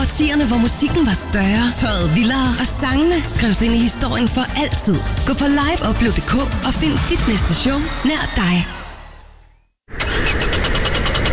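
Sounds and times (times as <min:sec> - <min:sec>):
speech: 0:00.2 - 0:08.8
car engine cranking and failing to start in cold wet weather: 0:09.9 - 0:11.3.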